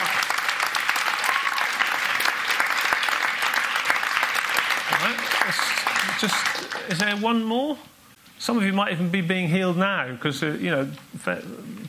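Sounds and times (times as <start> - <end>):
large crowd applauding: 0.0 - 7.3
speech: 5.0 - 11.8.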